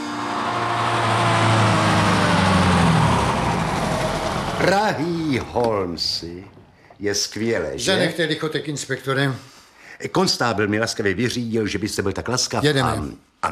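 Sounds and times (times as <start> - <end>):
automobile engine cranking and running as the car pulls away: 0.1 - 5.8
speech: 4.7 - 13.5.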